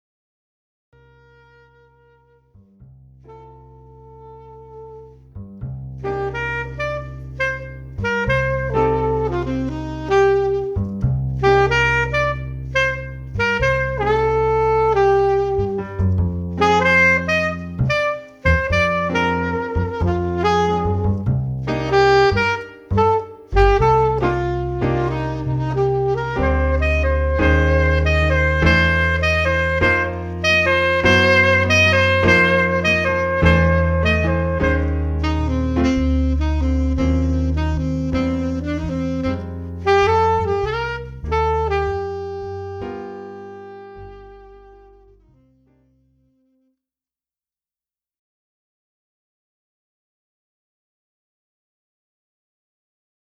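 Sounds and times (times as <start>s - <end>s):
saxophone: 1.0s - 45.7s
keyboard: 20.8s - 41.3s.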